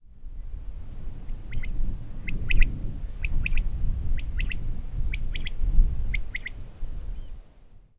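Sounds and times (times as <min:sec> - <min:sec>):
quail: 0:01.3 - 0:06.6.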